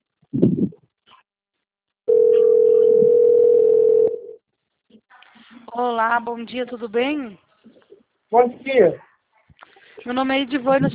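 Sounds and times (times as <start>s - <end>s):
telephone dial tone while placing a call: 2.1s - 4.4s
speech: 5.8s - 7.4s, 8.3s - 9.1s, 10.0s - 10.9s.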